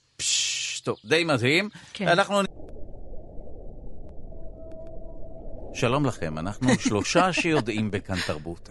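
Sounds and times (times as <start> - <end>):
speech: 0.2 - 2.5, 5.8 - 8.6
steady low underwater rumble: 2.5 - 8.2
laughter: 6.6 - 8.6.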